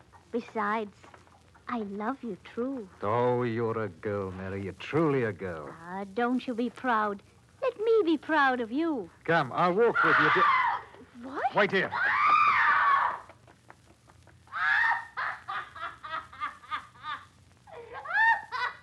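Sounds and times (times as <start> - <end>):
speech: 0.3 - 10.6, 11.2 - 12.1
woman screaming: 9.8 - 13.3, 14.5 - 15.4, 17.8 - 18.6.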